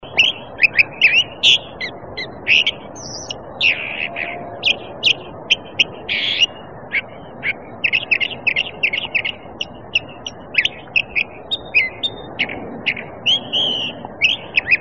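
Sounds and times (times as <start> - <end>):
California Thrasher calling: 0.0 - 14.7.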